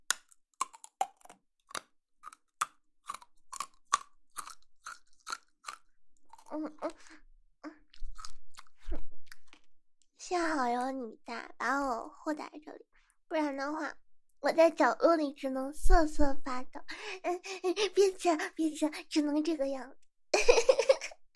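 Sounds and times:
crisp crunching of food being chewed: 0.1 - 7.1, 7.9 - 9.7
speech: 6.5 - 7.3, 10.3 - 20.8.

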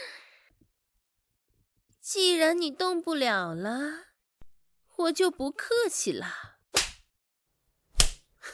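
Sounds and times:
speech: 2.1 - 4.1, 5.0 - 6.5
slap across the face: 6.8 - 7.1, 8.0 - 8.3.

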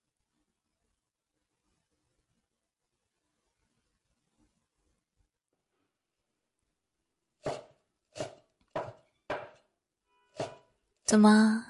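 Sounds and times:
knife chopping vegetables on a cutting board: 7.4 - 9.7, 10.4 - 10.7
speech: 11.1 - 11.6.

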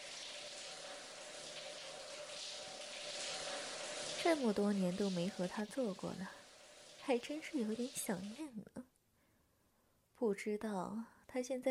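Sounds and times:
shower water running: 0.0 - 8.6
speech: 4.2 - 6.4, 7.1 - 8.8, 10.2 - 11.7.

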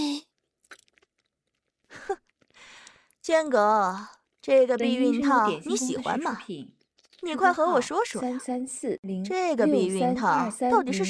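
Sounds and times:
crunchy chewing and swallowing: 0.2 - 3.3
faint wet chewing and mouth noises: 0.2 - 3.3, 4.0 - 4.8, 6.7 - 7.6
speech: 3.3 - 11.0.

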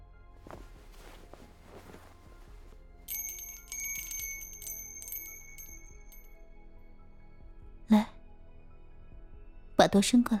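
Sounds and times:
small bell jingling as accompaniment: 1.0 - 6.4.

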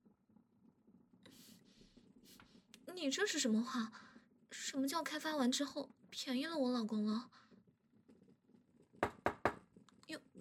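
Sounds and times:
speech: 2.3 - 4.1, 4.7 - 7.4
sharp knocks on a door: 9.0 - 9.6.

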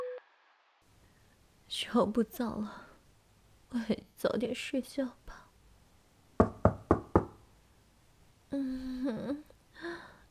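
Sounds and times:
speech: 1.7 - 2.8, 3.7 - 5.4, 8.6 - 9.4
sharp knocks on a door late at night: 6.4 - 7.4.

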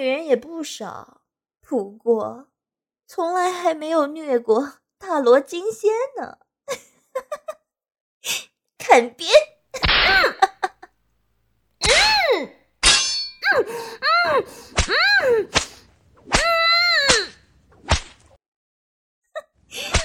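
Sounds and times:
speech: 0.0 - 2.5, 3.1 - 7.5, 8.2 - 10.5, 13.4 - 15.7
whip cracks: 9.8 - 10.5, 14.7 - 18.4, 19.8 - 20.0.

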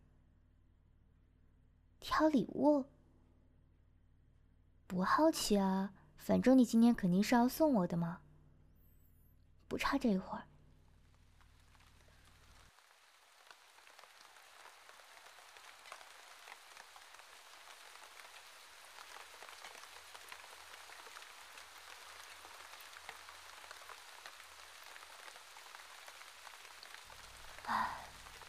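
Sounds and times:
speech: 2.0 - 3.0, 4.9 - 8.2, 9.7 - 10.5
steady rain pattering on a surface: 10.8 - 28.4.

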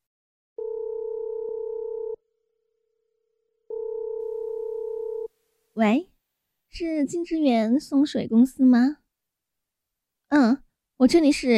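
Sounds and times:
telephone calling tone: 0.6 - 2.2, 3.7 - 5.3
speech: 5.8 - 6.1, 6.7 - 9.0, 10.3 - 11.5.

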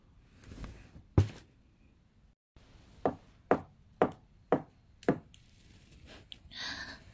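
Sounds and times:
knocks on a restroom stall door as a prearranged signal: 3.1 - 5.2.

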